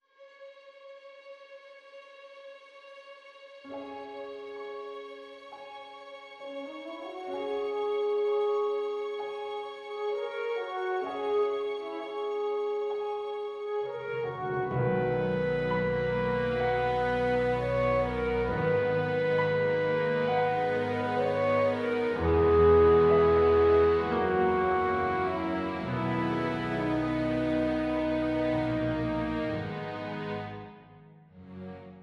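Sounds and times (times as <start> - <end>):
solo horn: 6.5 - 30.8.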